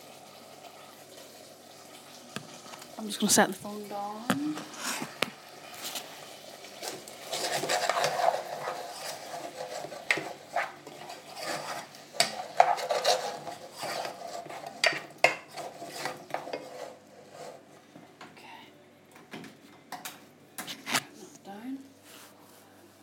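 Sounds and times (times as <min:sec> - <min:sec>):
food simmering in a pan on the stove: 0:00.0 - 0:18.3
speech: 0:03.0 - 0:05.2.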